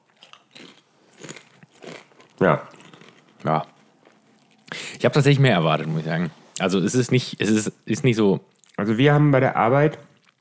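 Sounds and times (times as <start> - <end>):
crunching a potato chip being eaten: 0.0 - 4.8, 10.1 - 10.3
speech: 2.4 - 2.7, 3.4 - 3.7, 5.0 - 10.1.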